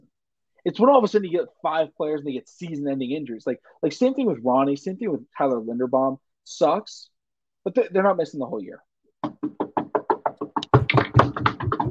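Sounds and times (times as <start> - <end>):
speech: 0.6 - 9.6
rapid knocking on a wooden surface: 9.2 - 11.8.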